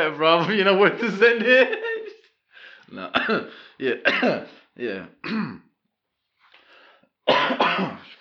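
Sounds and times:
speech: 0.0s - 1.9s, 2.9s - 5.6s, 7.3s - 8.2s
laughter: 0.3s - 2.3s
person clearing throat: 3.1s - 4.5s, 5.2s - 5.7s, 7.3s - 8.2s
person coughing: 3.1s - 4.6s, 5.2s - 5.7s, 7.3s - 8.2s.

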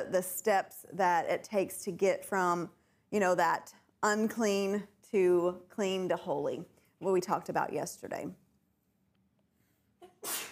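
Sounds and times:
speech: 0.0s - 8.4s, 10.2s - 10.5s
sneeze: 10.0s - 10.5s.

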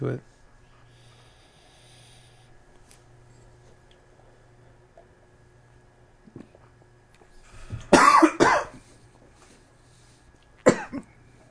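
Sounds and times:
person coughing after sipping beer: 7.9s - 8.8s, 10.6s - 11.1s.

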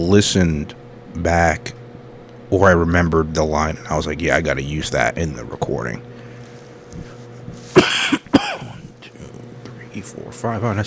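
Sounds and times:
speech: 0.0s - 1.8s, 2.5s - 6.1s, 10.0s - 10.8s
person coughing: 7.7s - 9.3s.

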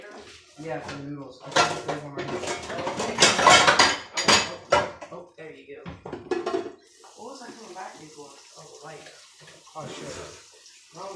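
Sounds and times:
water boiling down in a noodle pot: 0.0s - 5.0s, 6.3s - 11.1s
pots clattering: 0.0s - 5.2s, 5.9s - 7.7s
speech: 0.6s - 4.0s, 7.6s - 11.1s.

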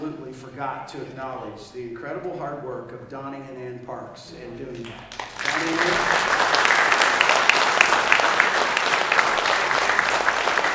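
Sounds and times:
speech: 0.1s - 6.4s
audience clapping: 4.8s - 10.7s.

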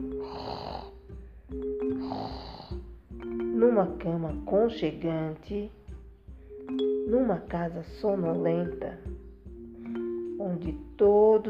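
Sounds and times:
voice imitating a grandmother snoring: 0.2s - 1.0s, 1.9s - 2.9s
speech: 3.7s - 5.8s, 6.7s - 9.2s, 10.4s - 11.4s.

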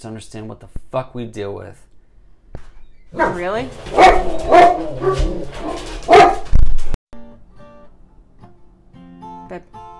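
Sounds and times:
speech: 0.0s - 1.9s, 2.5s - 6.1s
dog barking as a boy comes home: 3.1s - 6.6s.

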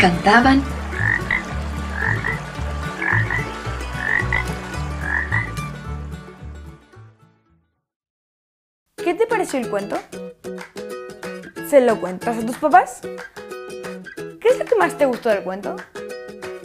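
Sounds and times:
speech: 0.0s - 0.8s, 9.5s - 10.3s, 11.7s - 13.4s, 14.5s - 16.0s
chorus of toads croaking in a stream: 0.9s - 5.6s.

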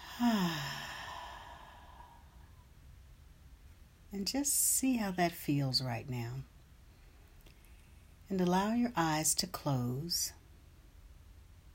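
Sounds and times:
deep breath out as a soft voiced sigh in a guided breathing exercise: 0.0s - 2.2s
quiet hiss: 0.0s - 11.7s
speech: 0.2s - 0.6s, 4.1s - 6.5s, 8.3s - 10.4s.

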